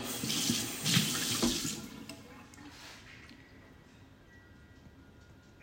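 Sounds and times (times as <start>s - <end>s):
spoon rinsed under a running kitchen tap during pancake preparation: 0.0s - 2.2s.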